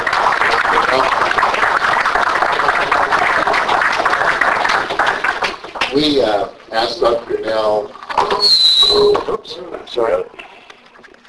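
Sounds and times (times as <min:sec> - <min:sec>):
audience applauding a speaker after a talk: 0:00.0 - 0:06.4
speech: 0:06.0 - 0:10.4.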